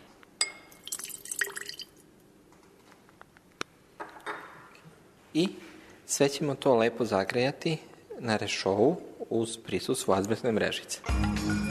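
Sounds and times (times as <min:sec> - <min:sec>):
bright glassy clinks: 0:00.4 - 0:02.0
water dripping: 0:00.4 - 0:02.1
water splashing and trickling into a glass measuring vessel: 0:00.8 - 0:02.0
speech: 0:05.4 - 0:11.6.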